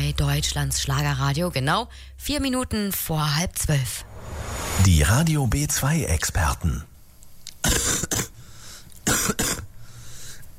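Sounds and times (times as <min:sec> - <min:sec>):
faint hum: 0:00.0 - 0:04.1, 0:04.8 - 0:10.5
speech: 0:00.1 - 0:06.9
harsh rasping coughs: 0:07.6 - 0:08.4, 0:09.0 - 0:09.8.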